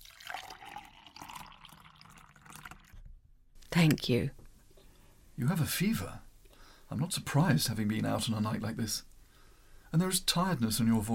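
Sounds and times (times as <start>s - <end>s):
water pouring into a glass: 0.0s - 3.1s
speech: 3.8s - 4.4s, 5.4s - 6.2s, 6.9s - 9.1s, 9.9s - 11.1s.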